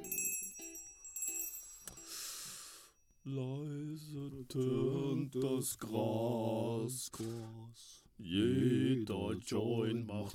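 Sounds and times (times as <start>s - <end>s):
small hand bell ringing: 0.0s - 3.4s
speech: 3.2s - 10.3s.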